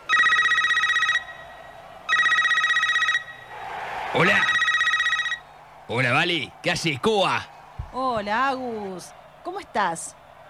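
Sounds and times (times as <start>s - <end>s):
telephone ringing with a rapid warbling trill: 0.0s - 1.5s, 2.1s - 3.5s, 4.2s - 5.4s
speech: 4.1s - 4.5s, 5.9s - 10.2s.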